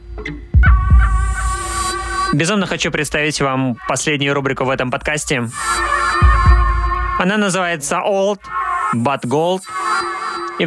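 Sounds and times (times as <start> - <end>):
steady low droning hum: 0.0 - 7.4
speech: 0.2 - 0.6, 2.3 - 6.0, 7.2 - 9.8
deep heartbeat thumps quickening: 0.2 - 2.4, 5.3 - 7.2.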